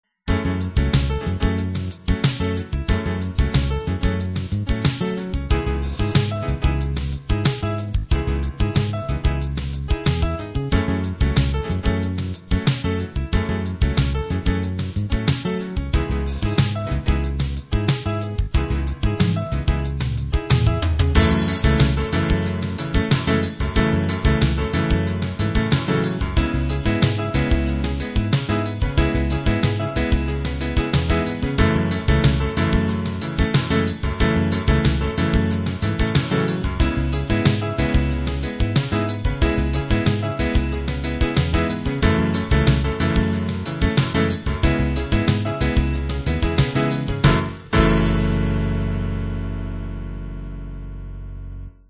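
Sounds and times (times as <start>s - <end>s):
jazz-pop piano music: 0.2s - 51.8s.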